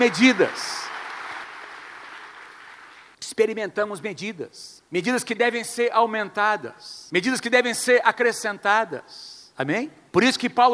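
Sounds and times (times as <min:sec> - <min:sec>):
speech: 0:00.0 - 0:00.8, 0:03.4 - 0:10.7
audience applauding: 0:00.0 - 0:03.2.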